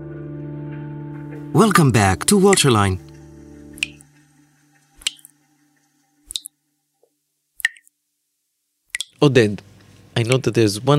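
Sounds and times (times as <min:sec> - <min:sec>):
speech: 0:01.5 - 0:03.1, 0:09.2 - 0:10.9
water dripping from a faucet: 0:02.2 - 0:04.2, 0:04.8 - 0:07.9, 0:08.9 - 0:09.2.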